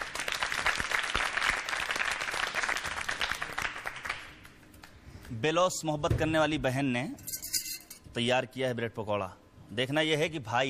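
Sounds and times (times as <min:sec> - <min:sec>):
room full of people applauding: 0:00.0 - 0:04.4
speech: 0:05.4 - 0:07.2, 0:08.2 - 0:10.6.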